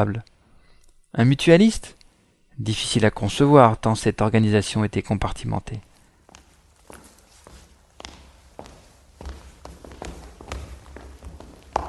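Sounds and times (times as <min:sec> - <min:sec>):
speech: 0:00.0 - 0:00.3, 0:01.1 - 0:02.0, 0:02.6 - 0:05.9
footsteps of several walkers in a corridor: 0:05.8 - 0:11.8.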